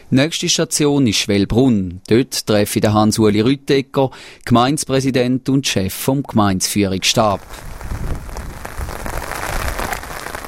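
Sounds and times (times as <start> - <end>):
speech: 0.1 - 8.3
rain pouring outdoors: 7.0 - 10.4
gusty wind rumbling: 7.2 - 10.4.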